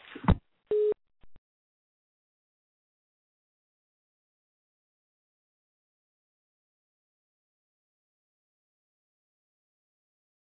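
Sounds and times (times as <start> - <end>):
steady telephone tone like a busy signal: 0.7 - 1.0.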